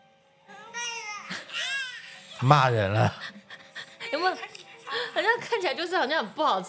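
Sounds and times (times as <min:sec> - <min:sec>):
baby crying after tasting food: 0:00.5 - 0:02.9
speech: 0:02.4 - 0:03.4, 0:05.2 - 0:06.6.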